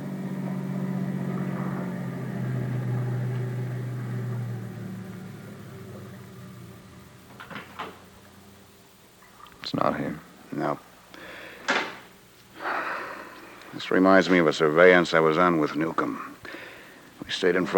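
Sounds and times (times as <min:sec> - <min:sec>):
car engine rumbling as the car approaches and slows down: 0:00.0 - 0:08.8
speech: 0:09.7 - 0:10.8, 0:13.8 - 0:16.3, 0:17.3 - 0:17.7.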